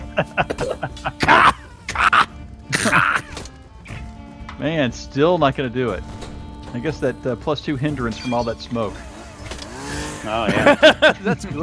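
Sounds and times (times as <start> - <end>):
laughter: 0.0 - 3.3, 10.2 - 11.6
speech: 0.2 - 1.4, 4.6 - 9.1, 10.2 - 11.6
person imitating coughing with voiced grunts: 0.2 - 3.3.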